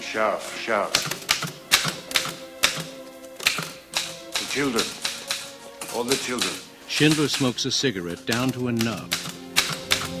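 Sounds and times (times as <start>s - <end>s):
speech: 0.1s - 1.3s, 4.6s - 5.0s, 6.0s - 9.4s
typewriter keys clattering: 3.5s - 10.1s.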